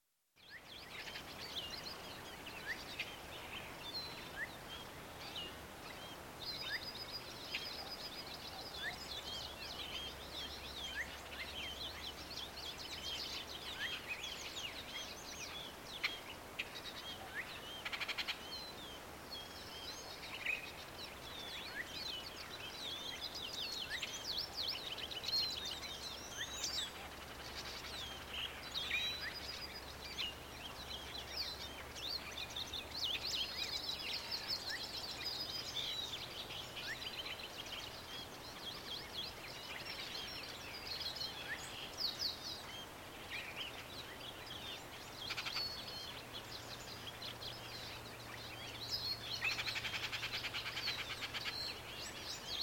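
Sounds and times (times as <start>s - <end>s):
forest ambience: 0.0s - 52.6s.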